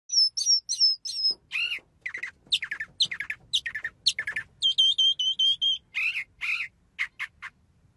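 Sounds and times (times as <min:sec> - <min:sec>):
bird song: 0:00.1 - 0:07.6.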